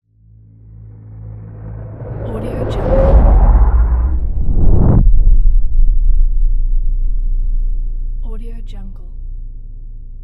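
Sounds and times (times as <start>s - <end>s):
cinematic deep power whoosh: 0.4s - 8.3s.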